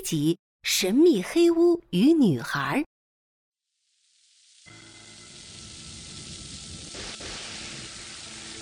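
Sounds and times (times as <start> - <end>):
speech: 0.1 - 2.9
heavy rain pouring: 4.7 - 8.6.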